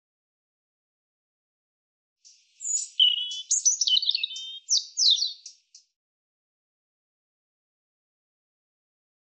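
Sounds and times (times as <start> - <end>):
European robin singing: 2.2 - 6.0.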